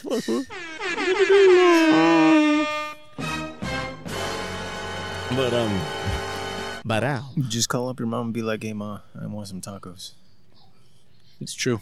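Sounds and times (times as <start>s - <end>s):
speech: 0.0s - 2.2s, 5.3s - 6.0s, 6.9s - 10.2s, 11.4s - 11.7s
air horn sound effect blasts and honks: 0.5s - 6.8s.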